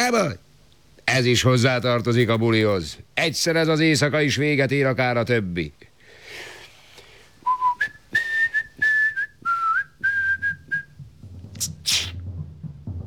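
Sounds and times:
speech: 0.1s - 0.4s, 1.1s - 6.5s
person whistling a short tune: 7.4s - 11.0s
low rumble: 10.5s - 13.0s
sharp noisy burst: 11.5s - 12.2s.

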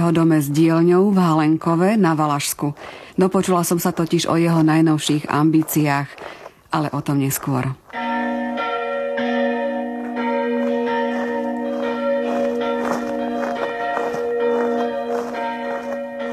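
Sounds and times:
speech: 0.1s - 8.1s
large church bells ringing festively: 8.0s - 16.3s.

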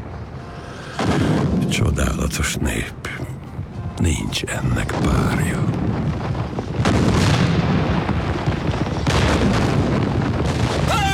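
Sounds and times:
speech: 1.1s - 3.3s, 4.0s - 5.9s
cannon blasts with heavy rumbling roar: 5.8s - 11.1s.

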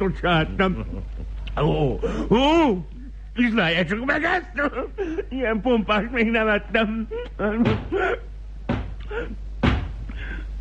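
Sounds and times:
speech: 0.0s - 8.3s, 9.1s - 9.4s
heavy knocking on a door: 7.6s - 8.0s, 8.7s - 9.0s, 9.6s - 10.0s.

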